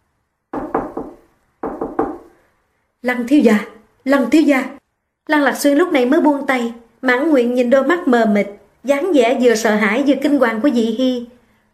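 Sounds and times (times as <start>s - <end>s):
firm hollow knocking on a door: 0.5s - 2.4s
speech: 3.0s - 11.4s.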